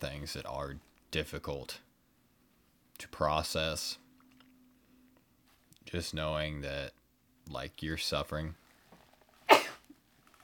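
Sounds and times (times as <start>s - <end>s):
speech: 0.0s - 1.9s, 3.0s - 4.0s, 5.8s - 8.6s
person sneezing: 9.5s - 10.0s.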